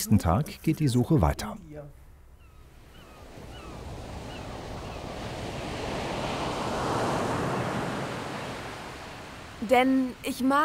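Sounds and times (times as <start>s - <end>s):
speech: 0.0s - 2.0s, 9.6s - 10.6s
steady wind: 0.0s - 10.6s
ocean surf: 2.8s - 10.6s.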